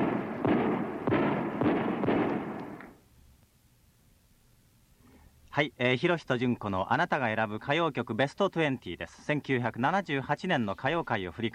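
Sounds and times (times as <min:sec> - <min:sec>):
fireworks bursts booming for a shopping arcade opening: 0:00.0 - 0:03.0
speech: 0:05.6 - 0:11.5.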